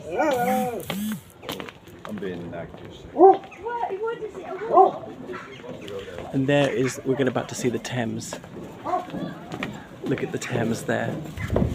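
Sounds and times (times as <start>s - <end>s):
low murmuring sounds: 0.0s - 11.7s
speech: 0.1s - 1.0s, 2.2s - 8.6s, 10.1s - 11.7s
dog barking at a passerby on an island in the river Thames: 3.2s - 3.5s, 4.6s - 5.5s, 8.8s - 9.1s.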